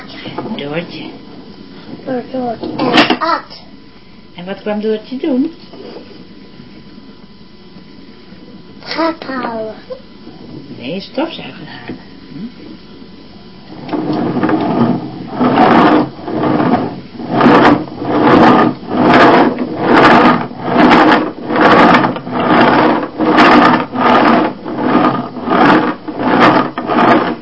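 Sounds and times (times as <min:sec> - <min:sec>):
speech: 0:00.2 - 0:01.3, 0:02.0 - 0:03.7, 0:04.4 - 0:06.2, 0:09.0 - 0:10.1, 0:10.8 - 0:12.6
toy tractor mechanical whirring and grinding: 0:14.0 - 0:27.3.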